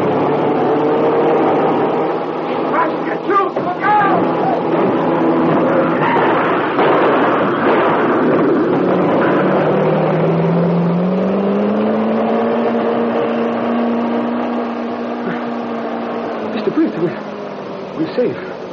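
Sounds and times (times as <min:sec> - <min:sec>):
car engine roaring as it speeds toward a police roadblock: 0:00.0 - 0:18.7
car crashing through a police barricade: 0:04.7 - 0:09.8.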